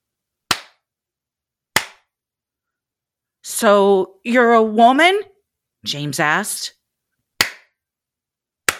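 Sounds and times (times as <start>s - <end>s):
sharp hand claps in the woods: 0.5s - 0.8s, 1.7s - 2.1s, 7.4s - 7.8s
speech: 3.6s - 6.8s.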